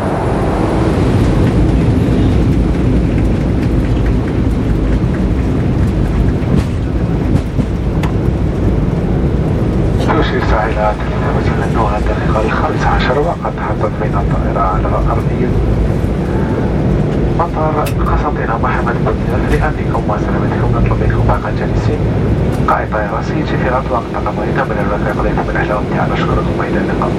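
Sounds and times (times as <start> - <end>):
airplane engines roaring during landing: 0.0 - 27.1
voices talking: 9.9 - 27.1.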